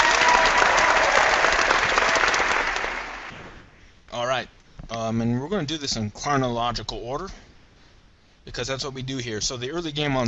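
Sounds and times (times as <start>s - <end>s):
crowd applauding loudly: 0.0s - 3.4s
speech: 5.2s - 7.5s, 8.5s - 10.2s.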